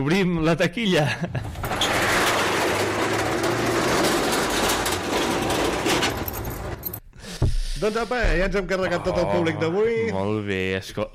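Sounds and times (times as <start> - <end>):
speech: 0.0 - 1.6, 7.8 - 11.1
washing machine running: 1.5 - 7.0.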